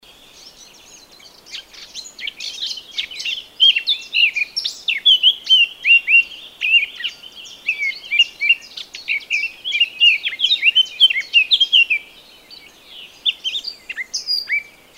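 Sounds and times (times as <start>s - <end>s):
Eurasian blackcap Sylvia atricapilla song with scratchy twittering and whistled phrases: 0.0s - 14.9s.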